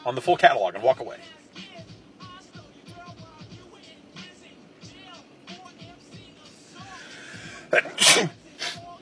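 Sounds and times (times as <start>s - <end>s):
speech: 0.0s - 1.4s, 7.7s - 8.4s
quick intake of breath: 6.8s - 8.8s
single sharp loud sneeze: 7.2s - 8.9s.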